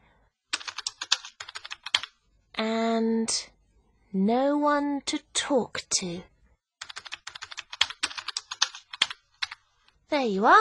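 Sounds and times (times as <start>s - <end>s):
typing on a computer keyboard: 0.5s - 2.2s, 6.8s - 9.6s
speech: 3.3s - 3.5s, 4.1s - 6.3s, 10.1s - 10.5s.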